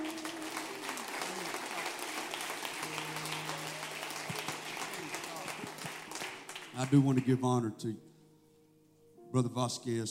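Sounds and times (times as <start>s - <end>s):
audience applauding: 0.0s - 7.6s
speech: 6.8s - 8.1s, 9.3s - 10.0s.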